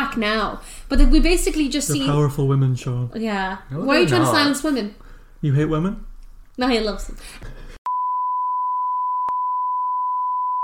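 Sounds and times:
speech: 0.2 - 7.6
high-pitched censor beep over speech: 7.9 - 10.6.

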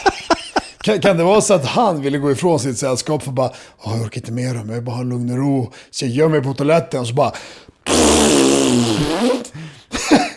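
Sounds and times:
speech: 0.8 - 10.2
person blowing a buzzing raspberry imitating a fart: 7.8 - 9.7
short vocal sound: 7.8 - 9.8.

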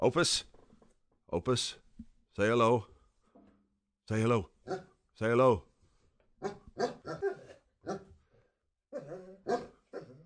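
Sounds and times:
speech: 0.0 - 0.5, 1.3 - 1.8, 2.4 - 2.9, 4.1 - 5.7, 6.4 - 8.1, 8.9 - 10.2
dog singing in drawn-out tuneful growls and whimpers: 6.8 - 8.0, 8.9 - 10.2.

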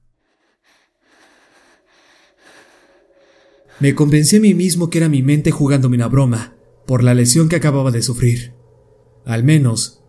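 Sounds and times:
eerie raspy wheezing breaths: 0.0 - 4.0
speech: 3.8 - 8.6, 9.2 - 10.0.

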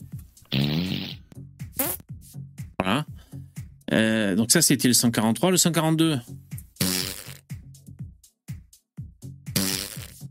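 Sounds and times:
cartoonish fart sound effects: 0.5 - 2.1, 6.8 - 7.5, 9.5 - 10.2
speech: 2.9 - 3.2, 4.0 - 6.5.

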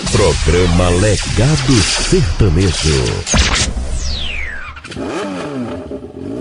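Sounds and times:
speech: 0.2 - 3.8
motorcycle engine revving: 4.7 - 6.3.

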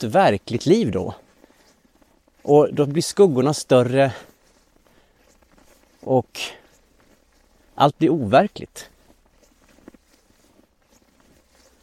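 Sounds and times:
speech: 0.0 - 1.2, 2.4 - 4.3, 6.0 - 6.6, 7.8 - 8.9
footsteps crunching through snow: 0.0 - 11.8.

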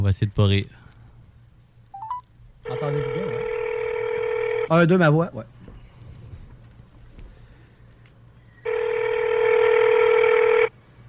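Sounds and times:
speech: 0.0 - 0.8, 2.7 - 3.4, 4.7 - 5.6
telephone tone while placing a call to a convenience store: 2.0 - 4.7, 8.7 - 10.7.

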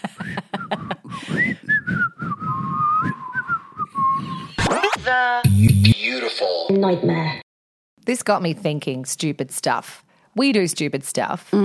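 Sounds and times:
laughter: 0.0 - 1.2
stovetop kettle whistling: 1.4 - 4.2
speech: 5.1 - 7.4, 8.0 - 11.6.

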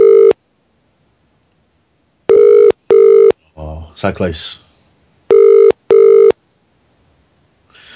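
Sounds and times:
telephone ringing tone in double bursts: 0.0 - 0.4, 2.3 - 3.4, 5.3 - 6.4
speech: 4.0 - 4.6.

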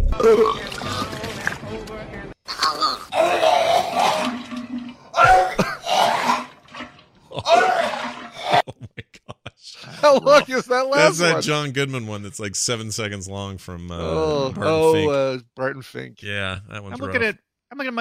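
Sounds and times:
speech: 0.2 - 0.7, 10.2 - 17.9
exaggerated fake vomiting from movie clips: 0.1 - 1.4, 2.5 - 8.7
laughter: 7.2 - 11.4.

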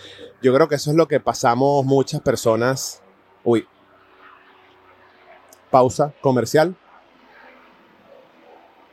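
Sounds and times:
airplane droning overhead: 0.0 - 8.9
speech: 0.4 - 3.8, 5.7 - 6.8.

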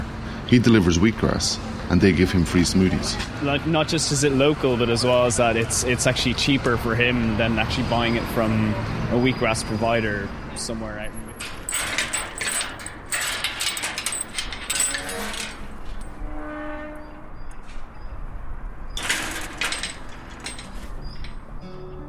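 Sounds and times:
speech: 0.5 - 11.6
garden gate creaking open: 11.1 - 16.3, 19.0 - 21.6
metallic clanks and rattles of the gate latch: 11.3 - 16.2, 19.0 - 21.6.

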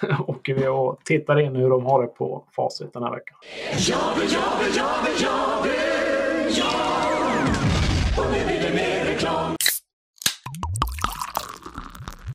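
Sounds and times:
laughter: 0.0 - 0.4
speech: 0.0 - 9.6
drink bubbling and fizzing up in a glass: 10.6 - 12.3.

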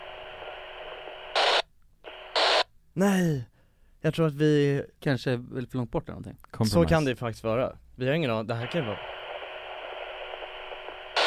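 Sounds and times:
radio static hiss like an untuned receiver: 0.0 - 2.7, 8.5 - 11.2
white-noise crackle: 0.0 - 2.7, 8.5 - 11.2
speech: 3.0 - 9.1.

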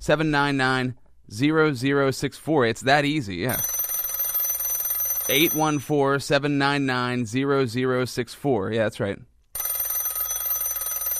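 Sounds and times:
speech: 0.0 - 3.8, 5.3 - 9.3
old-fashioned rotary telephone bell ringing: 3.5 - 6.0, 9.6 - 11.1.

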